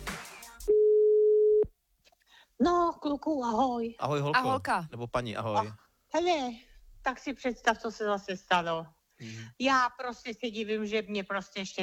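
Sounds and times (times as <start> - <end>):
telephone line tone after dialing a number: 0.7 - 1.6
speech: 2.6 - 11.8.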